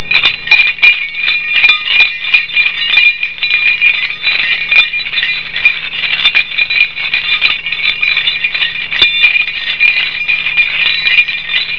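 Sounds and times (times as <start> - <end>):
hauling machines: 0.0 - 11.7.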